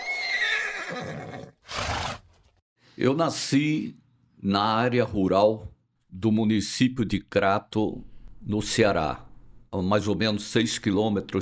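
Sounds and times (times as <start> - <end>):
horse neighing with a long shrill whinny: 0.0 - 2.3
horse snorting: 0.8 - 2.4
speech: 3.0 - 11.3.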